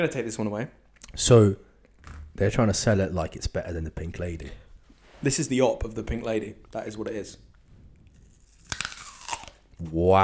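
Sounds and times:
speech: 0:00.0 - 0:01.7, 0:02.4 - 0:04.6, 0:05.2 - 0:07.5, 0:09.8 - 0:10.2
quick crackling chews of an apple: 0:06.6 - 0:10.0
crisp bite into an apple: 0:08.1 - 0:09.8.

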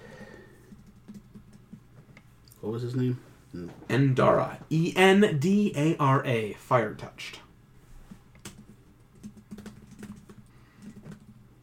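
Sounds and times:
typing on a computer keyboard: 0:00.6 - 0:01.8, 0:08.4 - 0:11.4
speech: 0:02.6 - 0:07.4.

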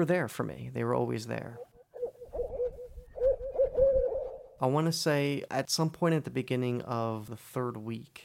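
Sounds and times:
speech: 0:00.0 - 0:01.7, 0:04.6 - 0:08.2
owl hooting: 0:01.5 - 0:04.6.

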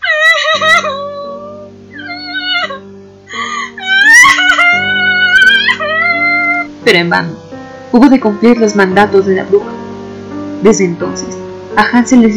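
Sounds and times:
girl crying bitterly in sobbing wails: 0:00.0 - 0:06.8
speech: 0:06.8 - 0:09.8, 0:10.6 - 0:12.3.

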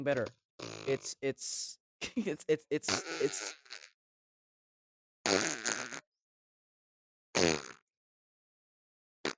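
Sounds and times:
speech: 0:00.0 - 0:03.6
person blowing wet sputtering fart noises with mouth: 0:00.6 - 0:01.1, 0:02.8 - 0:04.0, 0:05.2 - 0:06.1, 0:07.4 - 0:07.8.

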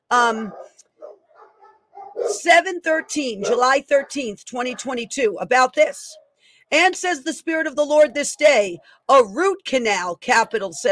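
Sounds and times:
speech: 0:00.1 - 0:00.8, 0:02.2 - 0:10.9
dog barking: 0:00.5 - 0:05.0.

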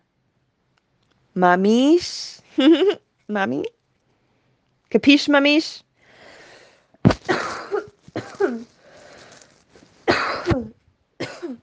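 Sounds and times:
speech: 0:01.4 - 0:03.8, 0:04.9 - 0:05.9
woman coughing with wheezy rasping intakes: 0:07.1 - 0:08.7, 0:10.0 - 0:11.6.

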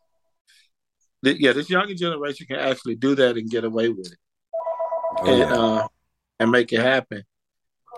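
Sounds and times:
speech: 0:01.2 - 0:04.2, 0:05.1 - 0:07.3
mobile phone ringing with a melodic voice-like ringtone: 0:04.5 - 0:05.9.

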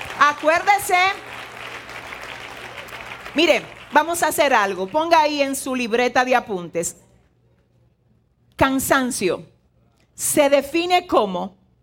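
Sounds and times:
audience applauding: 0:00.0 - 0:05.0
speech: 0:00.3 - 0:01.3, 0:03.4 - 0:07.0, 0:08.6 - 0:09.5, 0:10.2 - 0:11.6.

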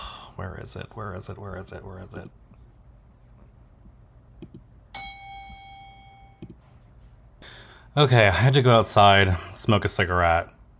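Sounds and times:
speech: 0:00.4 - 0:02.4, 0:08.0 - 0:10.6
bright bell ding: 0:04.9 - 0:06.4.

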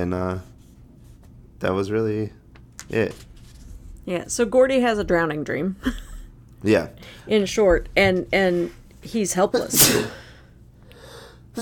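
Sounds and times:
speech: 0:00.0 - 0:00.5, 0:01.6 - 0:03.3, 0:04.0 - 0:10.2
person sneezing loudly: 0:09.7 - 0:10.3.

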